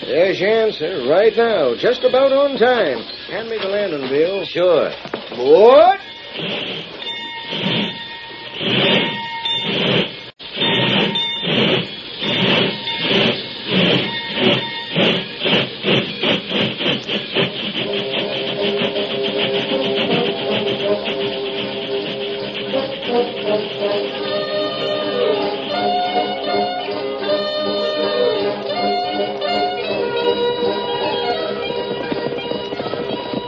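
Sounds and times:
faint whistle-like tones: 0.0 - 33.4
steam locomotive chugging, hissing and clanking along the tracks: 0.0 - 33.4
speech: 0.1 - 7.8.

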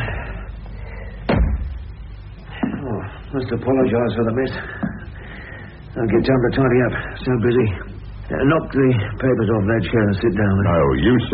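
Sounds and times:
quiet hiss: 0.0 - 11.3
door thud inside a room: 1.3 - 1.9
speech: 3.3 - 4.9, 6.0 - 11.3.

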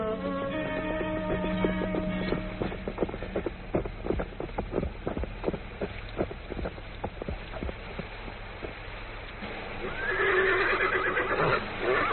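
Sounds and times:
hooves of ridden horses clopping: 0.1 - 12.1
horse whinnying: 9.9 - 12.1.

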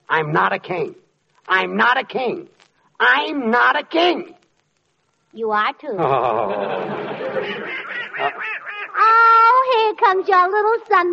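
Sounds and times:
speech: 0.1 - 4.4, 5.3 - 8.3, 9.2 - 11.1
laughter: 6.0 - 8.8
duck quacking: 7.4 - 9.2.

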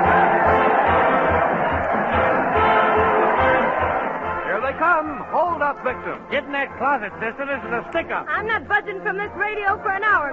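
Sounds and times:
low regular drumbeat thumping: 0.0 - 5.7
crowd cheering at a parade: 0.0 - 8.2
speech: 5.8 - 10.3.

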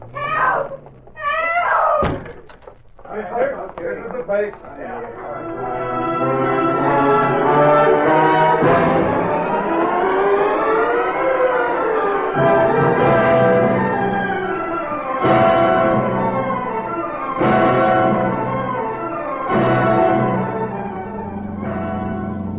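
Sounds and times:
police siren wailing at a crime scene: 0.0 - 2.1, 5.3 - 22.5
voices: 0.0 - 8.2
sharp knocks: 1.9 - 3.0.

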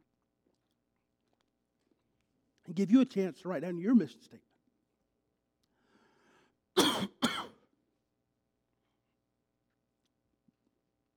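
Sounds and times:
speech: 2.6 - 4.5
rough coughs: 6.8 - 7.6.

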